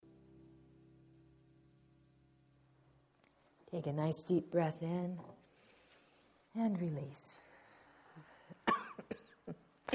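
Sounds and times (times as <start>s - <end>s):
speech: 3.7s - 5.3s, 6.6s - 7.4s
audience member coughing: 8.6s - 9.9s.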